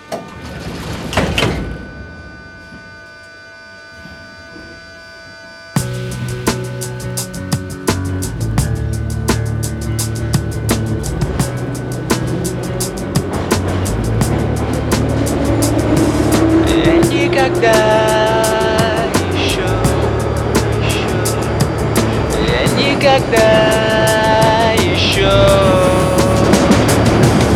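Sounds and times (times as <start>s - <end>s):
metro train doors thudding shut: 0.0s - 2.0s
metro train motors whining as the train departs: 0.0s - 27.5s
metro train rumbling as it pulls away: 5.8s - 27.5s.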